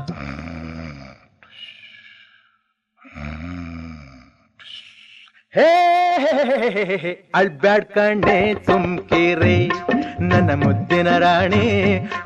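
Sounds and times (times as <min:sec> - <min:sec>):
person imitating snoring: 0:00.0 - 0:01.3, 0:03.0 - 0:04.4
speech: 0:05.5 - 0:12.2.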